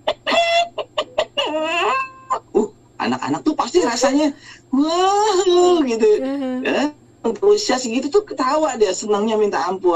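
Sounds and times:
person imitating a chicken clucking: 0.0s - 2.7s
speech: 3.2s - 9.9s.

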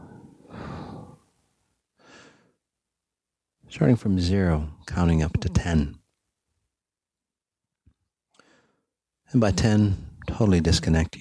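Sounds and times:
breathy exhale during a guided breathing exercise: 0.0s - 1.3s
deep breath in during a guided breathing exercise: 0.0s - 1.4s, 2.0s - 2.6s, 8.4s - 8.9s
speech: 3.7s - 6.0s, 9.3s - 11.1s.

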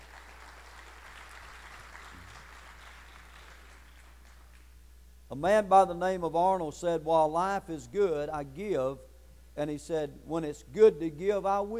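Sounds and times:
crowd clapping hands: 0.0s - 4.8s
speech: 5.3s - 11.7s.

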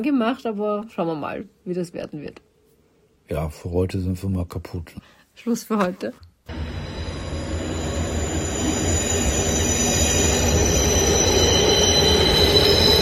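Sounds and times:
speech: 0.0s - 2.5s, 3.3s - 6.7s
thin high metallic squealing of tram: 6.5s - 13.0s
tram passing with wheels rumbling on rails: 6.5s - 13.0s.

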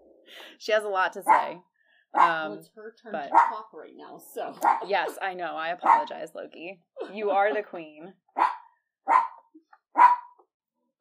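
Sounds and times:
speech: 0.3s - 8.6s
dog barking: 2.2s - 2.4s, 3.3s - 3.6s, 4.6s - 4.9s, 5.8s - 6.1s, 8.4s - 10.4s.

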